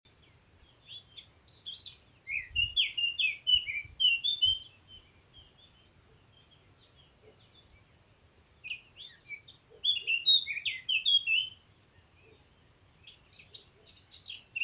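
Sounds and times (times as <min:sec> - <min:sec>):
Eurasian blackcap Sylvia atricapilla singing: 0:00.6 - 0:08.0, 0:08.6 - 0:12.0, 0:13.0 - 0:14.6.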